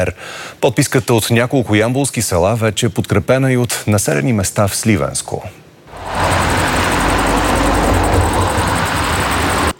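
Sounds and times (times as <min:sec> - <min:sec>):
speech: 0:00.0 - 0:06.2
broad road noise: 0:05.9 - 0:09.7
engine rumble: 0:05.9 - 0:09.7
steady loud roar of vehicle traffic driving out of an airbase: 0:05.9 - 0:09.7.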